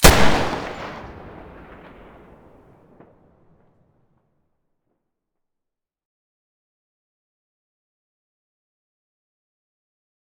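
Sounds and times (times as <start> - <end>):
Desert Eagle pistol muzzle gunshot: 0.0 - 2.6.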